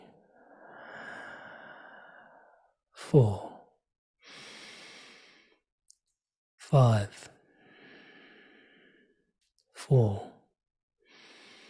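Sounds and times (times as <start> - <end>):
slow drawn-out breath during a breathing exercise: 0.0 - 2.8, 4.2 - 5.6, 7.4 - 9.3, 11.0 - 11.6
speech: 3.1 - 3.5, 6.7 - 7.3.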